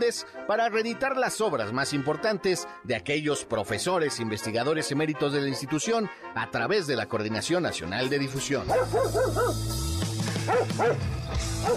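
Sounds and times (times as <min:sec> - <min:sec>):
speech: 0:00.0 - 0:09.9, 0:10.5 - 0:11.7
dog barking in short high yips: 0:08.7 - 0:09.6, 0:10.4 - 0:11.7.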